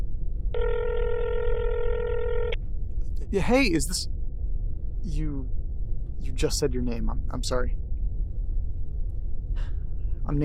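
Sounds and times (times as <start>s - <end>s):
faint low hum: 0.0s - 10.4s
ringback tone from a phone line: 0.6s - 2.6s
speech: 3.3s - 4.2s, 5.0s - 5.6s, 6.2s - 7.8s, 10.3s - 10.4s.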